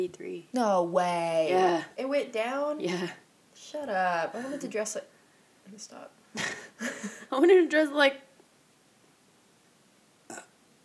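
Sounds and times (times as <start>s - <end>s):
speech: 0.0s - 8.3s
burp: 10.3s - 10.6s.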